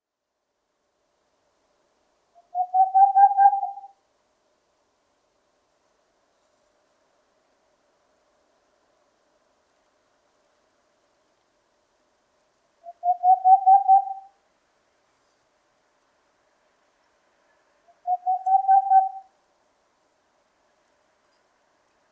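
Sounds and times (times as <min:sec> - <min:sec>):
Aegolius funereus owl calling: 0:02.4 - 0:04.0, 0:12.8 - 0:14.4, 0:17.9 - 0:19.3.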